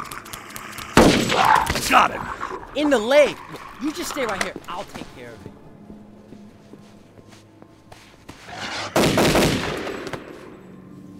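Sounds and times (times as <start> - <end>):
speech: 1.4 - 5.5
rifle gunshots: 9.0 - 10.2.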